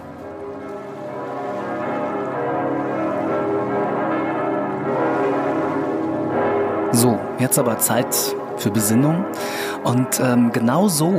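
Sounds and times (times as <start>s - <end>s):
bells ringing: 0.0s - 11.1s
speech: 7.0s - 11.1s.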